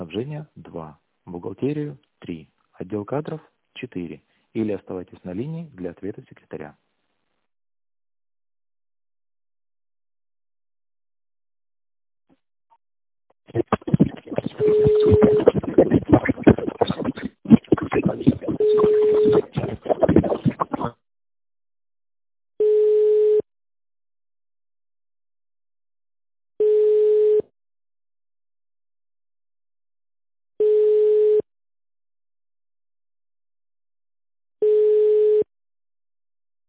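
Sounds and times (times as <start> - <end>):
speech: 0.1 - 6.8, 13.5 - 14.0
loud dense crackling noise on a phone line: 13.5 - 20.9
busy tone beeps on a company phone line: 14.6 - 15.6, 18.5 - 19.5, 22.6 - 23.4, 26.6 - 27.4, 30.6 - 31.5, 34.6 - 35.5.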